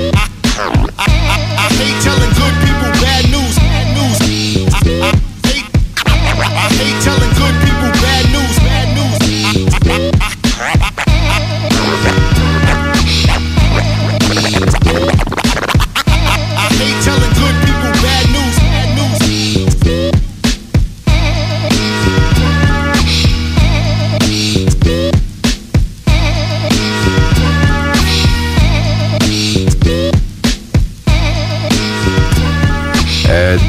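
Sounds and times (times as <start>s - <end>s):
sharp turntable scratches: 0.0s - 3.5s, 4.2s - 20.9s, 32.4s - 33.6s
hip-hop instrumental with steady beat: 0.0s - 33.6s.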